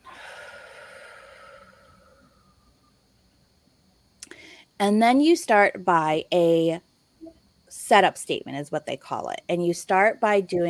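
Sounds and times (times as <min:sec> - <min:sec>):
deep breath in and out: 0:00.0 - 0:02.9
speech: 0:04.8 - 0:06.9, 0:07.8 - 0:10.6.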